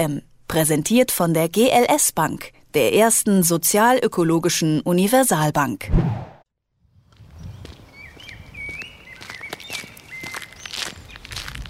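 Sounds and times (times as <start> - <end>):
speech: 0.0 - 6.3
soft scuffing footsteps on former brewery grounds: 7.1 - 11.6
faint bird chirps: 7.3 - 11.4.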